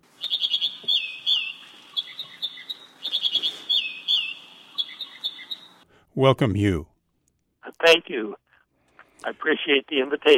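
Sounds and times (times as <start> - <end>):
American Dipper singing: 0.1 - 5.9
speech: 6.2 - 6.9, 7.8 - 8.4, 9.2 - 10.3.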